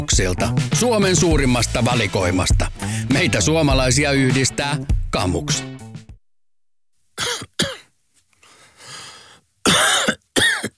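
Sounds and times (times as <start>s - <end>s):
speech: 0.1s - 5.7s
loud harsh raspy coughs: 7.2s - 7.9s, 9.6s - 10.7s
soft rough throat clearing: 7.2s - 7.9s, 9.7s - 10.7s.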